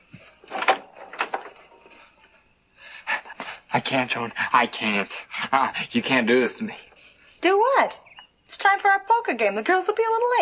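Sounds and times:
door opening: 0:00.4 - 0:02.0
speech: 0:03.7 - 0:08.0, 0:08.7 - 0:10.4.

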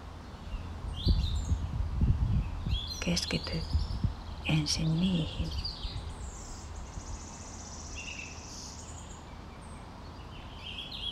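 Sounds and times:
birds chirping and twittering: 0:00.0 - 0:11.1
speech: 0:03.1 - 0:03.9, 0:04.5 - 0:05.6.

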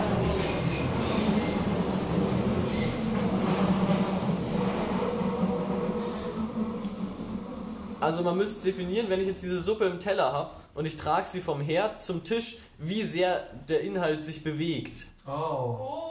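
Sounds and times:
commuter train wheels squealing: 0:00.0 - 0:08.8
commuter train rumbling past: 0:00.0 - 0:10.6
speech: 0:08.1 - 0:16.0.

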